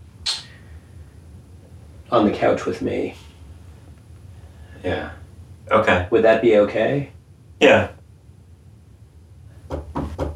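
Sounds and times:
low hum: 0.0 - 10.3
speech: 2.1 - 3.2, 4.8 - 8.0
soft hesitant knocks on a door: 9.7 - 10.3.

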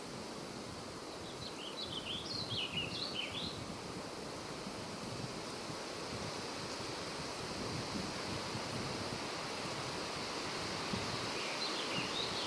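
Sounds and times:
steady rushing wash in a midday forest: 0.0 - 12.4
bird chirps in a midday forest: 1.2 - 3.6.

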